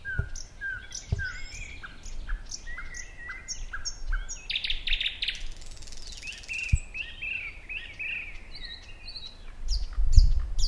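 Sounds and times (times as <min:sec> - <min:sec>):
thrush nightingale song with pure whistles and short chirps: 0:00.0 - 0:10.6
dull thumps: 0:01.0 - 0:01.5.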